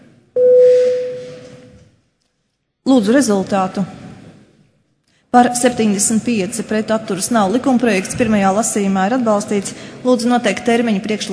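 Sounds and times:
parliament voting bell electronic tone: 0:00.4 - 0:01.7
speech: 0:02.9 - 0:04.0, 0:05.3 - 0:11.3.

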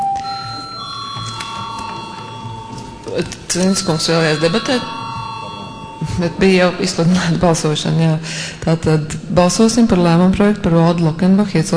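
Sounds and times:
parliamentary electronic bell ringing before a vote: 0:00.0 - 0:08.0
faint murmur of room noise: 0:00.0 - 0:11.7
speech: 0:03.1 - 0:05.0, 0:06.0 - 0:11.7.

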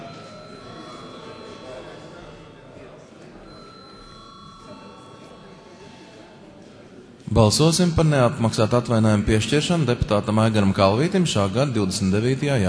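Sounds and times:
electric bell ringing in a parliament chamber before a vote: 0:00.0 - 0:02.5, 0:03.4 - 0:06.3
faint murmuring voices in a parliament chamber: 0:00.0 - 0:12.6
speech: 0:07.3 - 0:12.6.

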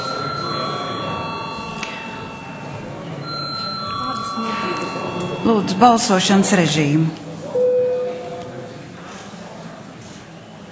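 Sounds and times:
electric bell ringing in a parliament chamber to call members to a vote: 0:00.0 - 0:07.2
low murmur of voices in a parliament chamber: 0:00.0 - 0:10.7
speech: 0:05.4 - 0:07.2.

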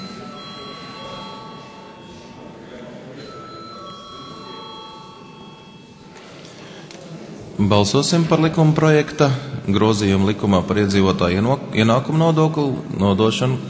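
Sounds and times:
electric bell ringing in a parliament chamber before a vote: 0:00.0 - 0:02.4, 0:03.2 - 0:06.1
busy murmur of voices in a parliament chamber: 0:00.0 - 0:13.6
speech: 0:07.6 - 0:13.6.

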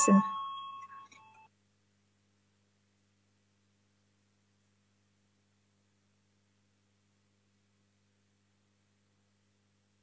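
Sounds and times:
speech: 0:00.0 - 0:00.4
parliamentary electronic voting bell tone: 0:00.0 - 0:01.5.

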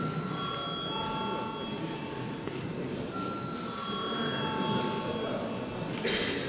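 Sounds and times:
parliamentary voting bell ringing in a large hall: 0:00.0 - 0:02.1, 0:03.1 - 0:05.6
low murmur of voices in a large hall: 0:00.0 - 0:06.4.

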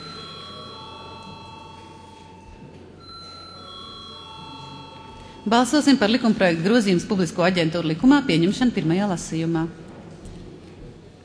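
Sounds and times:
electronic voting bell ringing in a parliament chamber: 0:00.0 - 0:07.4
faint murmur: 0:00.0 - 0:11.2
speech: 0:05.4 - 0:09.8.

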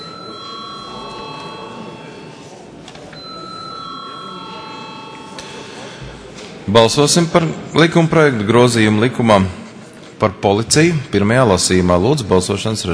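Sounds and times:
electric bell ringing in a parliament chamber to call a vote: 0:00.0 - 0:06.0
constant low murmur in a parliament chamber: 0:00.0 - 0:12.9
speech: 0:06.7 - 0:09.6, 0:10.4 - 0:12.9.

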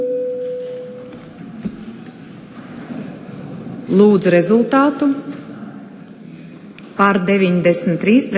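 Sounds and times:
parliamentary voting bell electronic tone: 0:00.0 - 0:01.0
speech: 0:03.9 - 0:05.4, 0:07.0 - 0:08.3.

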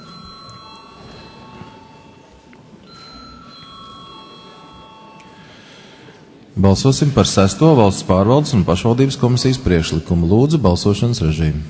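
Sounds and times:
electric bell ringing to call deputies to a vote: 0:00.0 - 0:05.8
speech: 0:06.6 - 0:11.6.

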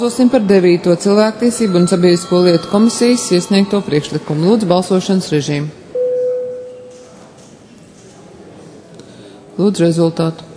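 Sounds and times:
speech: 0:00.0 - 0:05.8, 0:09.6 - 0:10.5
parliament voting electronic bell signal: 0:01.5 - 0:04.5, 0:05.9 - 0:07.0.

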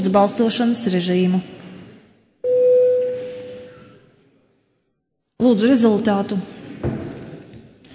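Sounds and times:
speech: 0:00.0 - 0:01.6, 0:05.5 - 0:07.0
electronic bell tone in a parliament chamber calling a vote: 0:02.4 - 0:04.0.

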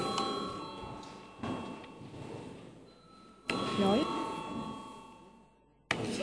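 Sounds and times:
parliament chamber electric bell ringing before vote: 0:00.0 - 0:02.1, 0:02.8 - 0:05.8.

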